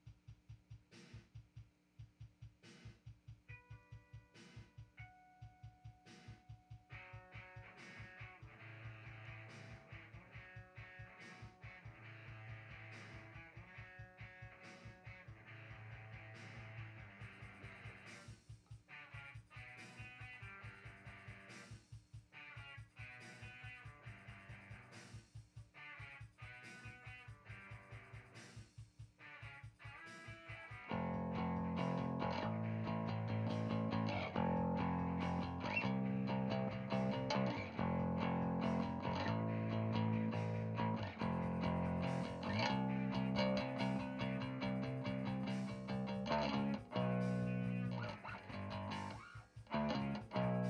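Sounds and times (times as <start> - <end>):
bass playing: 30.9 - 50.6.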